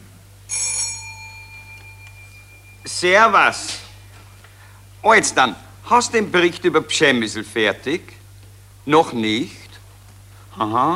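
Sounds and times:
low steady hum: 0.0 - 10.9
telephone bell ringing in an office: 0.5 - 2.9
speech: 2.8 - 3.8, 5.0 - 8.2, 8.8 - 9.6, 10.6 - 10.9.

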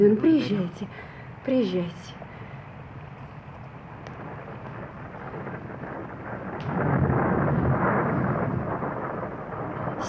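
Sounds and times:
speech: 0.0 - 2.2
thunder rumbling in a thunderstorm: 0.0 - 10.0.

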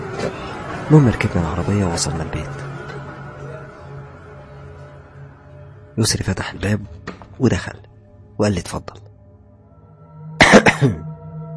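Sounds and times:
speech: 0.2 - 2.7, 6.0 - 9.0, 10.8 - 11.1
man coughing harshly as he enters a house: 10.4 - 11.1.

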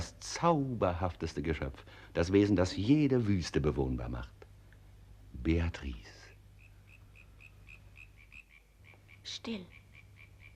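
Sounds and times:
speech: 0.4 - 4.4, 5.4 - 6.2, 9.3 - 9.8
frogs croaking at night: 6.2 - 10.5.

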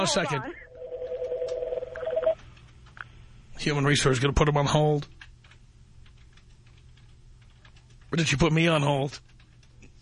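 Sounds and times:
speech: 0.0 - 0.6, 3.6 - 5.2, 8.1 - 9.3
faint low hum: 0.0 - 10.0
telephone ringing with a steady electronic tone: 0.6 - 2.4.

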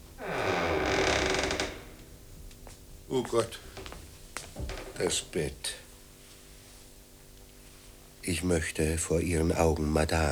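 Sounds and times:
door creaking as it is opened: 0.0 - 2.1, 4.6 - 5.2
speech: 3.1 - 3.7, 5.0 - 5.8, 8.2 - 10.2.

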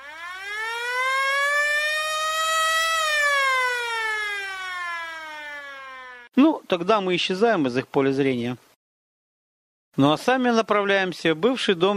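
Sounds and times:
police siren wailing: 0.0 - 6.3
speech: 6.4 - 8.7, 10.0 - 11.9.

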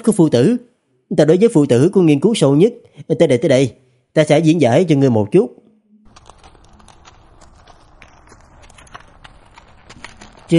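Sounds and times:
speech: 0.0 - 5.6
faint clip-clop of a horse-drawn carriage crossing a stone bridge over a river: 6.2 - 10.5.

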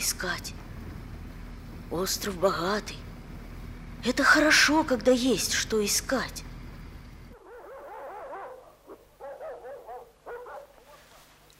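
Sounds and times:
steady noise: 0.0 - 11.5
speech: 0.1 - 0.6, 1.9 - 3.1, 4.0 - 6.5
several dogs including a shepherd-husky mix whimpering and yelping: 7.4 - 11.3.

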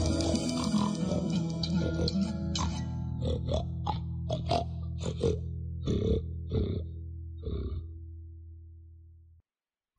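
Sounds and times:
pig oinking and grunting: 0.2 - 7.9.

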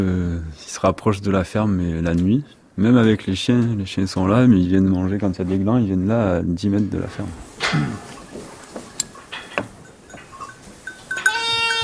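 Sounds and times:
speech: 0.8 - 8.1
clicks and knocks: 7.6 - 10.6
sheep bleating on a farm: 11.2 - 11.8.

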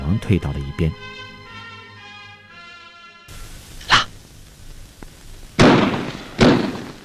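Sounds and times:
speech: 0.1 - 1.3
fuse-detonated explosives blasting on barbed wire at an enemy blockade line at night: 5.6 - 7.0.

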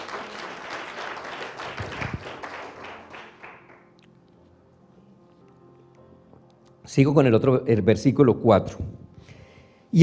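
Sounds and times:
church congregation clapping: 0.0 - 4.1
speech: 6.9 - 9.0.

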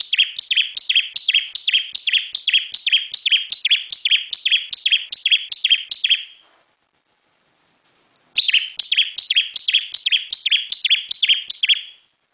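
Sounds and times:
Bar-winged prinia song: 0.0 - 6.4, 8.4 - 12.1.

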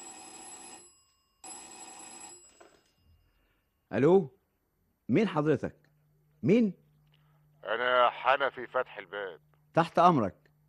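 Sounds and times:
home telephone bell ringing: 0.0 - 3.5
speech: 3.9 - 4.4, 5.1 - 5.8, 6.4 - 6.8, 7.6 - 10.4.

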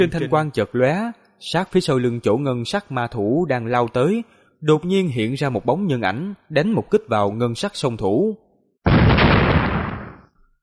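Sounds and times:
speech: 0.0 - 8.4
massive explosion in a fantasy battle: 8.9 - 10.4.

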